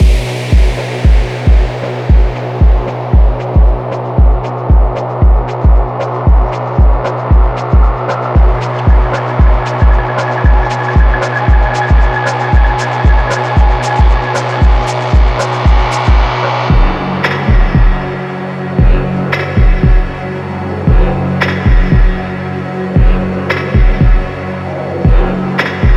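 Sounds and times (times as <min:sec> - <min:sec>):
dark ambience: 0:00.0 - 0:25.9.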